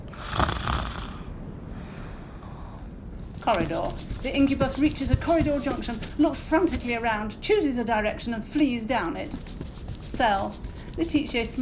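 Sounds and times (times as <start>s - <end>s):
person snoring in bed: 0.1s - 1.3s
speech: 3.5s - 11.6s.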